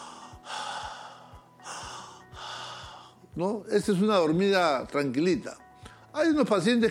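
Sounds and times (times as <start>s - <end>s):
person imitating calm normal breathing: 0.0s - 3.3s
speech: 3.4s - 5.6s, 6.2s - 6.9s.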